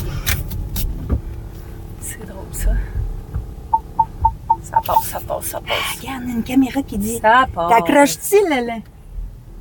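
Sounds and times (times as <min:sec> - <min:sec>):
car engine rumbling low while parking: 0:00.0 - 0:09.5
speech: 0:02.2 - 0:02.9, 0:04.8 - 0:08.9
short electronic beeps: 0:03.7 - 0:05.2.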